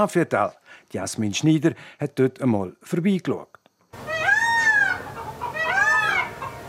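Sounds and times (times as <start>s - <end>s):
speech: 0.0s - 4.1s
faint outdoor hum: 0.0s - 6.6s
chickens squawking on the forecourt of a deer farm in Arezza in the Safiental: 4.0s - 6.6s.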